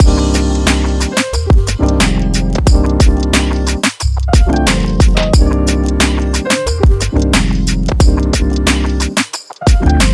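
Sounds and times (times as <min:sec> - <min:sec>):
groovy hip hop loop: 0:00.0 - 0:10.1.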